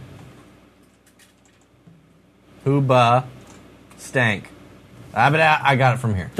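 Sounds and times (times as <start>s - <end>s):
low steady hum: 0.0s - 6.3s
computer keyboard typing clicks: 0.8s - 1.7s
speech: 2.6s - 3.4s, 4.0s - 4.5s, 5.2s - 6.3s.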